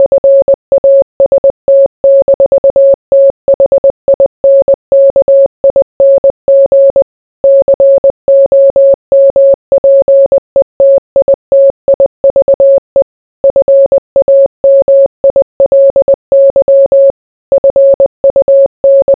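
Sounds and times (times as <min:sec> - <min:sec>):
Morse code beeps: 0:00.0 - 0:19.1.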